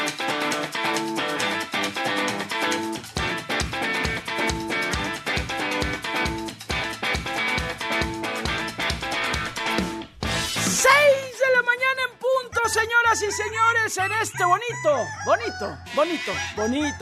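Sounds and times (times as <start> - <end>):
music: 0.0 - 16.9
rooster crowing: 13.2 - 16.9
speech: 13.4 - 16.9.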